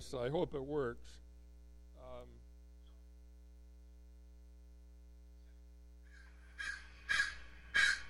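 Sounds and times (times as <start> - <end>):
speech: 0.0 - 1.2
steady electrical hum: 0.0 - 8.0
crow cawing: 6.1 - 8.0.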